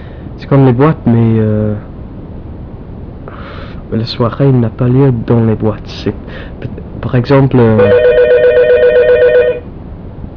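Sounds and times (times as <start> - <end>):
low hum: 0.0 - 10.3
speech: 0.4 - 1.9, 3.9 - 8.2
telephone ringing with electronic warble: 7.8 - 9.7.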